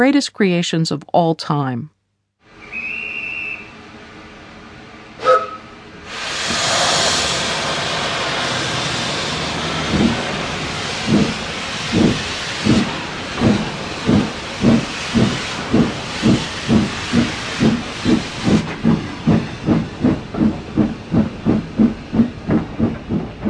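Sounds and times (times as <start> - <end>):
speech: 0.0 - 1.9
steam locomotive whistle at the Franz Josef railway station in Prague: 2.5 - 3.8, 5.2 - 7.5
steam locomotive releasing hissing steam: 5.2 - 23.4.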